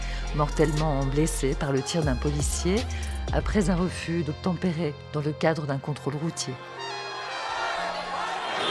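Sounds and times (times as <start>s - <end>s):
speech: 0.4s - 6.8s
large dense crowd at a memorial march in Nanterre France murmuring and calling out: 7.2s - 8.6s.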